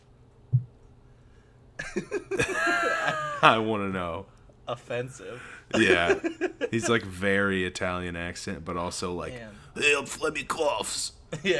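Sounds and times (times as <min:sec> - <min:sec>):
low thump: 0:00.5 - 0:00.8
laughter: 0:01.8 - 0:03.7, 0:05.3 - 0:07.2, 0:11.3 - 0:11.5
speech: 0:02.0 - 0:11.5.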